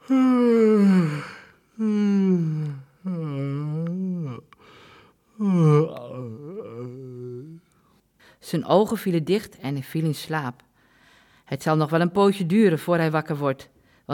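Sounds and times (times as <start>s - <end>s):
voice acting out a gnome's yawning: 0.0s - 4.6s, 5.3s - 7.7s
speech: 8.5s - 10.7s, 11.5s - 14.1s.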